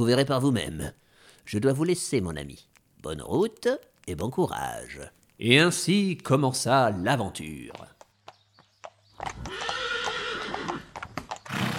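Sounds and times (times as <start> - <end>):
speech: 0.0 - 8.0, 9.2 - 9.8
horse hooves clopping: 0.0 - 11.7
horse whinnying: 9.2 - 11.7.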